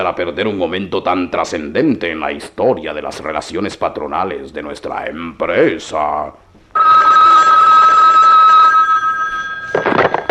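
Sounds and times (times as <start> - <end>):
speech: 0.0 - 7.1
telephone bell ringing: 6.8 - 10.3.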